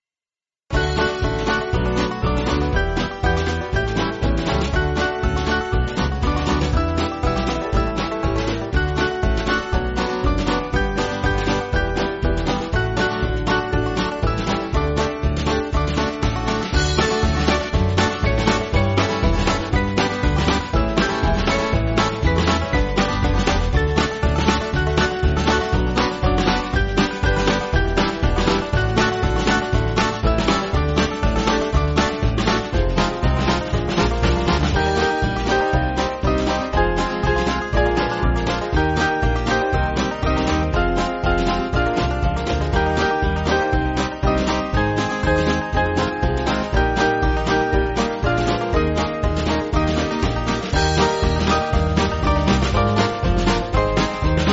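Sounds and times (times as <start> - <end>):
banjo band playing: 0.8 - 54.5.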